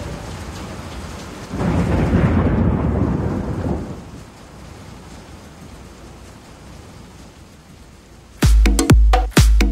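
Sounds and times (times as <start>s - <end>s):
deep rumble of thunder: 0.0s - 5.3s
heavy rain downpour: 0.0s - 9.6s.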